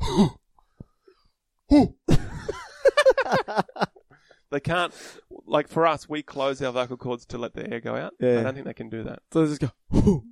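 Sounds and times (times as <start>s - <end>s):
person vocally imitating a cow's cough: 0.0s - 0.4s, 9.9s - 10.2s
speech: 0.2s - 0.4s, 1.7s - 2.0s, 4.5s - 10.2s
laughter: 2.2s - 4.0s.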